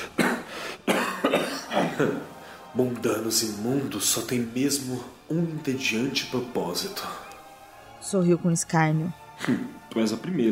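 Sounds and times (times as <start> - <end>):
weak, strengthless coughing after a laugh: 0.0 - 2.3, 9.4 - 9.7
speech: 2.0 - 7.3, 8.0 - 10.4.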